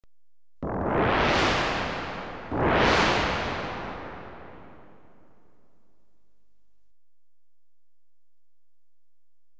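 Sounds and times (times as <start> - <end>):
electronically generated crashes: 0.6 - 5.3.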